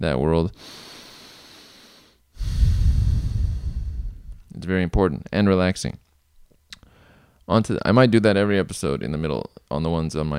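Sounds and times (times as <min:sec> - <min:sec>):
speech: 0:00.0 - 0:00.9, 0:04.6 - 0:06.0, 0:07.5 - 0:10.3
person drawing a long deep breath in through the nose: 0:00.6 - 0:04.5, 0:06.8 - 0:07.4.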